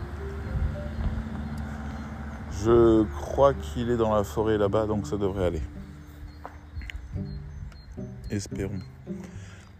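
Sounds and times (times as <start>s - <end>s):
car passing by in forest: 0.0s - 6.0s
speech: 2.6s - 5.8s, 8.3s - 9.3s.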